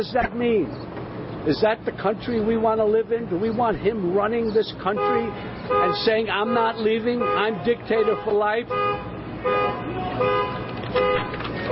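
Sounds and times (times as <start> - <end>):
speech: 0.0 - 11.0
car alarm blaring in tonal bursts: 4.9 - 11.7.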